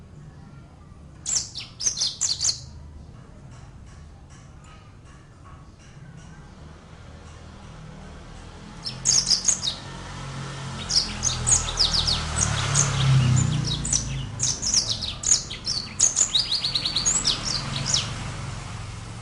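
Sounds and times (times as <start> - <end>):
brimstone canary singing: 1.2 - 2.8, 8.6 - 18.7.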